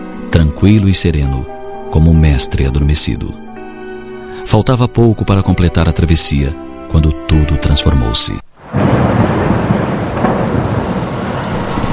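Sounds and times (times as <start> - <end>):
speech: 0.4 - 3.4, 4.4 - 8.4
heavy rain pouring down: 8.5 - 11.9
deep continuous rumble of thunder: 8.6 - 11.9.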